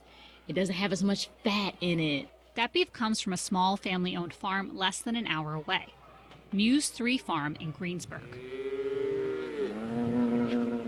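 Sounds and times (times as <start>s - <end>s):
speech: 0.5s - 8.8s
cow lowing on a farm on a windy day: 8.2s - 10.8s.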